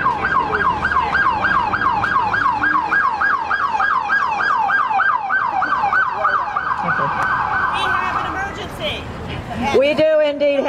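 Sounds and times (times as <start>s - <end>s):
emergency vehicle siren yelping while passing by: 0.0s - 8.5s
faint traffic rumble: 0.0s - 10.6s.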